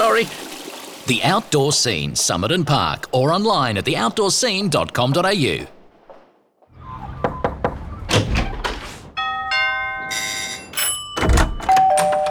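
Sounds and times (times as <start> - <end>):
speech: 0.2 - 0.4, 1.0 - 5.8
sharp knocks on a door: 7.2 - 7.9
bright multi-tone doorbell chime: 9.2 - 12.2.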